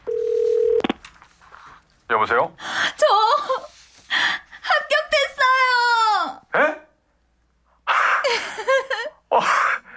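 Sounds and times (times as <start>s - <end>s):
telephone dial tone: 0.0s - 1.0s
faint noise: 0.0s - 9.9s
speech: 2.1s - 3.6s.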